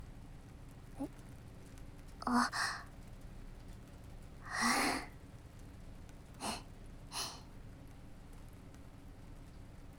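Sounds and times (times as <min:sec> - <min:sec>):
speech: 0:01.0 - 0:01.2, 0:02.3 - 0:02.7
big breathy yawn: 0:04.5 - 0:05.1
short soft exhaled breaths: 0:06.4 - 0:07.4.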